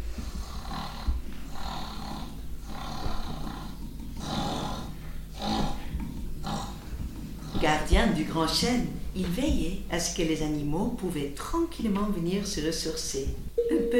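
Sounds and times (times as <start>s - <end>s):
solitary wild boar snoring loudly in a cave: 0.0s - 10.1s
speech: 7.7s - 13.9s.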